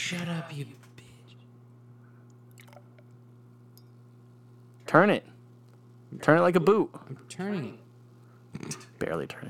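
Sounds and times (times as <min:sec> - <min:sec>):
low electrical hum: 0:00.0 - 0:09.4
speech: 0:00.1 - 0:01.0, 0:04.9 - 0:05.3, 0:06.1 - 0:07.8, 0:08.6 - 0:09.4
beer being poured roughly into a glass: 0:02.5 - 0:03.2.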